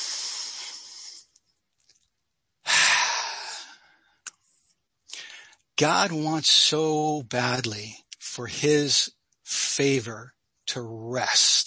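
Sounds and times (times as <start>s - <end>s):
deep breathing: 0.0s - 1.3s, 2.7s - 4.2s, 5.1s - 5.6s
speech: 5.8s - 11.6s.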